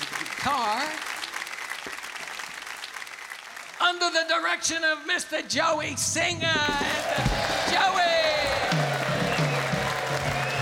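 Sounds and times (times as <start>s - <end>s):
studio crowd clapping: 0.0s - 4.5s, 6.7s - 10.6s
speech: 0.4s - 1.0s, 3.9s - 8.0s.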